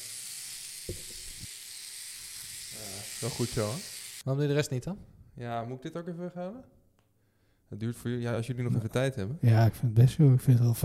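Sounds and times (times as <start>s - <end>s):
electric shaver buzzing: 0.0s - 4.2s
speech: 3.2s - 6.8s, 7.7s - 10.8s.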